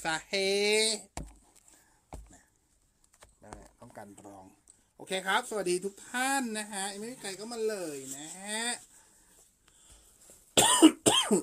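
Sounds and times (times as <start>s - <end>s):
speech: 0.0s - 1.3s, 4.0s - 8.9s, 10.6s - 11.4s
faint room noise: 0.0s - 11.4s
person coughing: 10.6s - 11.4s.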